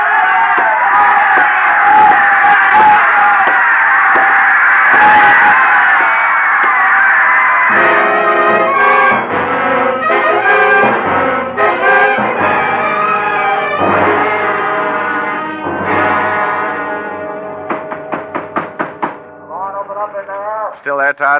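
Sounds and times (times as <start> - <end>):
large boxing crowd screaming and roaring: 0.0 - 19.0
tonal sound: 7.7 - 20.6.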